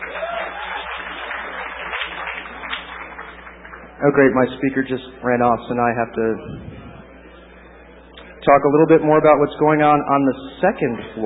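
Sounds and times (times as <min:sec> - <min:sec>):
audience applauding: 0:00.0 - 0:04.0
speech: 0:04.0 - 0:06.7, 0:08.4 - 0:11.2.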